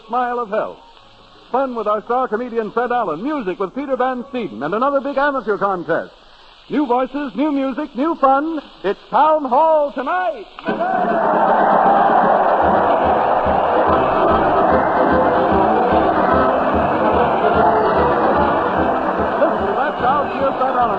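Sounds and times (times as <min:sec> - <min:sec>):
speech: 0:00.1 - 0:00.9, 0:01.5 - 0:12.4
large parade crowd cheering and shouting insults: 0:10.6 - 0:20.9.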